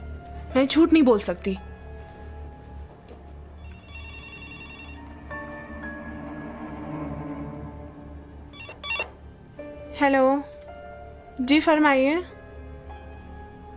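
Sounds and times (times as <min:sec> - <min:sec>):
speech: 0:00.5 - 0:01.7, 0:10.0 - 0:10.5, 0:11.4 - 0:12.4
telephone ringing with electronic trill: 0:03.6 - 0:05.3, 0:08.6 - 0:09.2.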